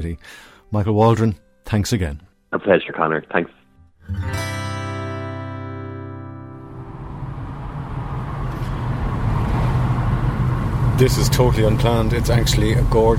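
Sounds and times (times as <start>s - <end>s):
speech: 0.0s - 4.5s, 11.0s - 13.1s
car engine starting and humming: 6.6s - 13.1s
tyre and road noise of a car driving: 6.8s - 13.1s.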